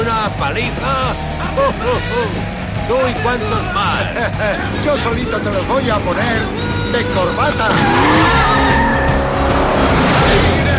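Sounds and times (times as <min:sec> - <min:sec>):
race car engine roaring as it accelerates during a race: 0:00.0 - 0:10.7
speech: 0:00.4 - 0:08.9
laughter: 0:01.1 - 0:09.0
tire squeal: 0:06.4 - 0:10.4.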